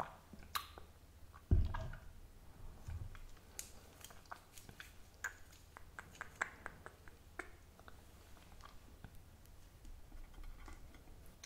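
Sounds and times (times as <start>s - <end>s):
mouth clicks: 0.0s - 1.5s, 3.5s - 8.0s
faint low hum: 0.0s - 11.4s
low thump: 1.5s - 2.1s
soft wet chewing of sushi: 3.1s - 9.2s.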